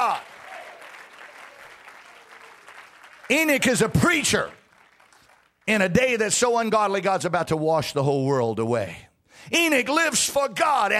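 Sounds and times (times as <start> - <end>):
church congregation clapping hands: 0.0 - 6.6
speech: 3.3 - 4.6, 5.7 - 10.9.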